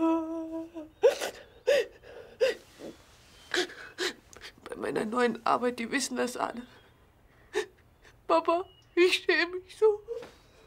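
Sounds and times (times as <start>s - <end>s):
daughter crying and sobbing: 0.0s - 4.6s
speech: 4.9s - 6.8s, 8.4s - 10.3s.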